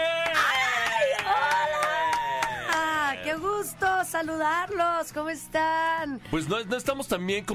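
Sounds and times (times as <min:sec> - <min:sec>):
studio audience rhythmic clapping welcoming a guest host: 0:00.0 - 0:03.4
speech: 0:03.6 - 0:07.5.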